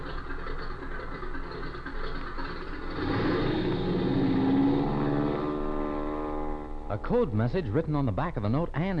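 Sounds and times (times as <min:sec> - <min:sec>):
propeller plane engine droning and revving up: 0:00.0 - 0:08.9
speech: 0:07.0 - 0:08.9.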